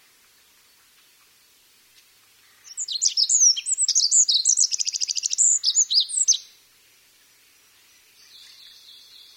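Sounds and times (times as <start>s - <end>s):
olive-backed pipit singing: 2.7s - 6.5s.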